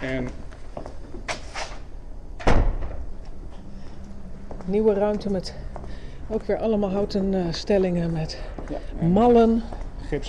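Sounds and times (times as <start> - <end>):
speech: 0.0 - 0.4, 4.7 - 5.7, 6.3 - 10.2
door shutting with a solid thud: 2.4 - 3.0.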